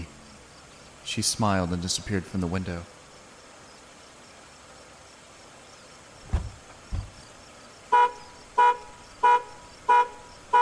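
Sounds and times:
speech: 1.1s - 3.0s
dull thumps: 6.2s - 7.3s
tripped car alarm honking: 7.9s - 10.6s.

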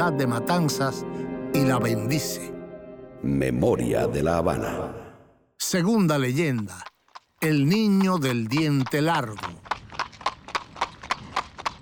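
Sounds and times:
speech: 0.0s - 2.6s, 3.2s - 5.0s, 5.6s - 9.6s
horse hooves clip-clopping: 6.1s - 11.8s.

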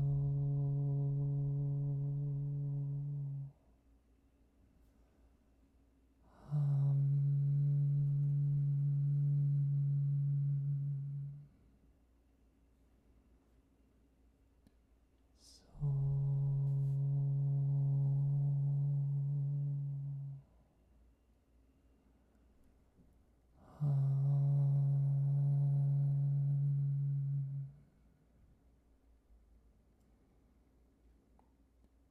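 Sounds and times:
single voice chanting a meditation mantra as a low drone: 0.0s - 3.6s, 6.3s - 11.6s, 15.4s - 20.5s, 23.6s - 28.0s.

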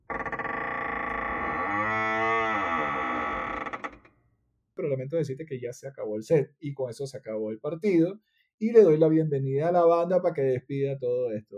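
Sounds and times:
door creaking shut: 0.0s - 4.2s
speech: 4.8s - 11.5s.

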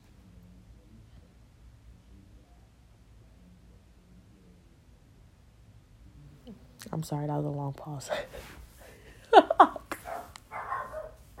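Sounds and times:
speech: 6.8s - 8.6s
laughter: 8.9s - 10.2s
dog wailing: 10.1s - 11.3s.

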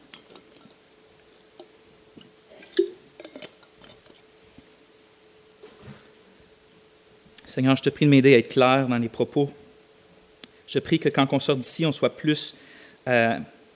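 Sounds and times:
person sipping water: 0.2s - 4.3s
speech: 7.5s - 9.6s, 10.7s - 13.6s.

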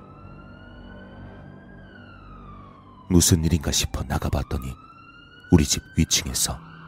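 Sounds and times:
ambulance siren wailing: 0.0s - 6.8s
speech: 3.1s - 4.9s, 5.5s - 6.8s.

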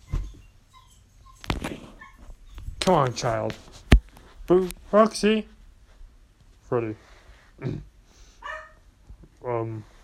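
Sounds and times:
speech: 2.9s - 3.8s, 4.5s - 5.5s, 6.7s - 7.9s, 9.4s - 9.9s
dog barking: 8.4s - 8.8s.

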